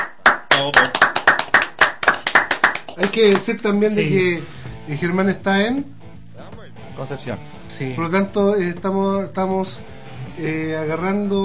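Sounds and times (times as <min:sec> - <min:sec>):
people clapping for a guest on a radio show: 0:00.0 - 0:03.8
speech: 0:00.6 - 0:01.0, 0:03.0 - 0:11.4.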